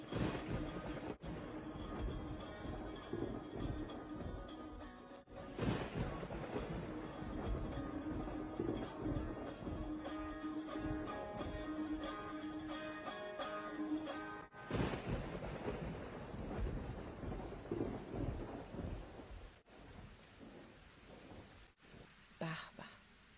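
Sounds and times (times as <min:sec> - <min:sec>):
rolling thunder: 0:00.0 - 0:11.6, 0:14.6 - 0:22.1
tonal music: 0:00.0 - 0:15.2
heavy rain: 0:00.0 - 0:23.3.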